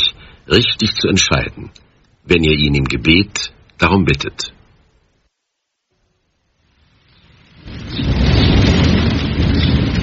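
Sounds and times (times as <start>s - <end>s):
speech: 0.0s - 4.6s
steady heavy rain: 6.4s - 10.0s
deep rolling thunder: 7.0s - 10.0s.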